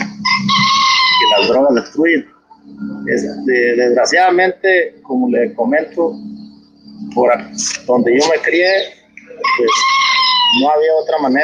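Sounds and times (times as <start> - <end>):
rooster crowing: 0.1 - 1.8, 9.2 - 11.0
speech: 1.9 - 6.3, 7.1 - 11.4.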